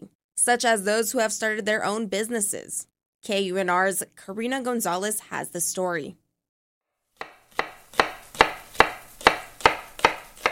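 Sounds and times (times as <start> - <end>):
speech: 0.4 - 6.2
knife chopping vegetables on a cutting board in a home kitchen: 7.2 - 10.5.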